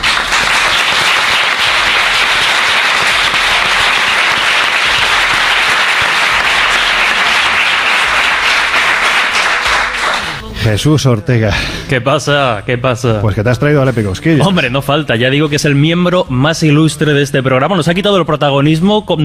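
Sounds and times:
audience applause: 0.0 - 10.4
speech: 10.7 - 19.2.

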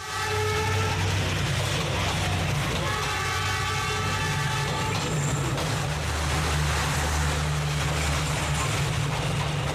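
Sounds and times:
long blaring train horn: 0.0 - 1.2, 2.8 - 5.1
train rumbling in a narrow city street: 0.0 - 9.7.

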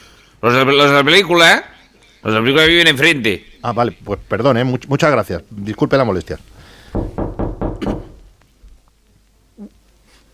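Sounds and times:
speech: 0.4 - 7.2
firm knocking on a door: 6.9 - 8.3.

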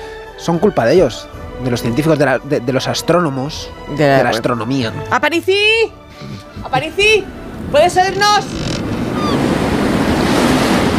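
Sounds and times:
speech: 0.4 - 8.6
sea waves and surf: 6.2 - 10.9
faint high seagull cry: 8.8 - 9.6.

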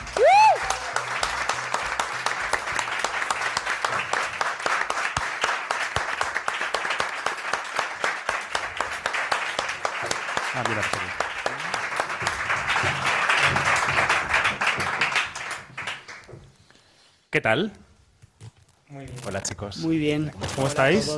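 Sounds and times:
faint voices and cheers: 0.0 - 1.2
studio audience applause: 0.0 - 16.4
speech: 17.4 - 17.8, 19.0 - 21.1.

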